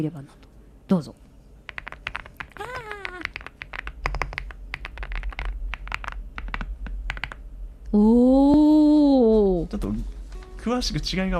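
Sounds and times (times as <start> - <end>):
speech: 0.0 - 1.2, 7.9 - 8.4, 9.7 - 11.3
rapid typing on a home computer keyboard: 1.7 - 7.4.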